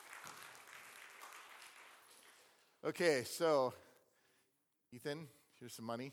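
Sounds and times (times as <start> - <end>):
audience applause: 0.0 - 2.5
speech: 2.8 - 3.9, 4.9 - 6.1.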